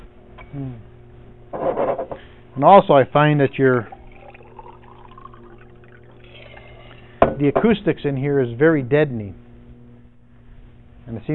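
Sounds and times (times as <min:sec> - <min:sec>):
speech: 0:00.5 - 0:00.9, 0:01.5 - 0:04.0, 0:07.4 - 0:09.4, 0:11.1 - 0:11.3
water pouring into a little glass: 0:03.8 - 0:07.2.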